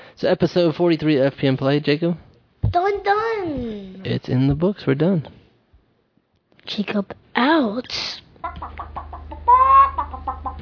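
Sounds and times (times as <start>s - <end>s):
speech: 0.2s - 5.4s, 6.6s - 8.8s
chicken clucking and squawking: 8.4s - 10.6s.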